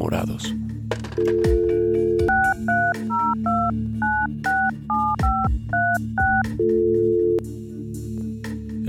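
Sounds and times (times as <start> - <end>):
speech: 0.2 - 1.3
telephone dial tone: 1.2 - 7.4.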